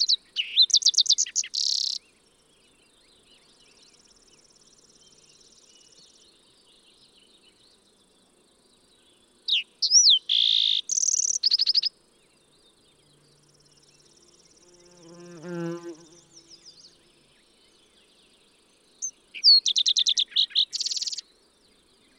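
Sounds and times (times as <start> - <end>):
fox sparrow singing clear slurred whistles and buzzy trills: 0.0 - 2.0, 9.5 - 11.9, 19.0 - 21.2.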